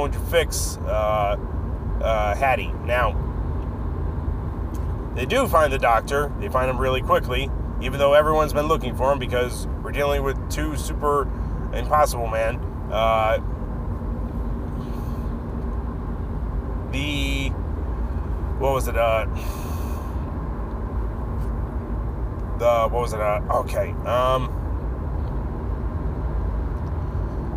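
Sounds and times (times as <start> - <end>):
speech: 0.0 - 3.3, 5.2 - 13.5, 16.9 - 17.6, 18.6 - 19.7, 22.6 - 24.6
car engines roaring in a film car chase: 0.0 - 27.5.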